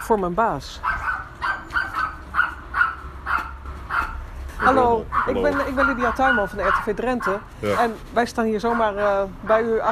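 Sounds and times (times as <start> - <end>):
speech: 0.1 - 0.9, 4.6 - 9.9
dog barking: 0.8 - 8.0, 8.6 - 9.3.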